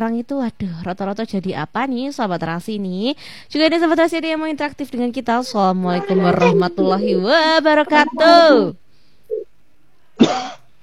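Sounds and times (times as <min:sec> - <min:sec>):
speech: 0:00.0 - 0:08.8, 0:10.2 - 0:10.6
harsh breathy cough: 0:10.2 - 0:10.6.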